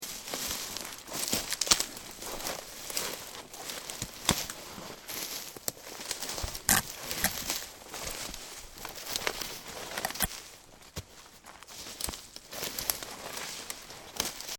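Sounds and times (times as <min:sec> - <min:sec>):
walking through branches: 0:00.0 - 0:14.5.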